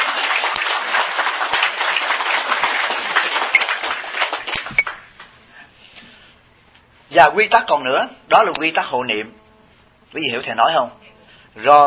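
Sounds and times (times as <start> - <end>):
audience applause: 0.0 - 5.1
speech: 7.2 - 9.4, 10.1 - 11.0, 11.6 - 11.8.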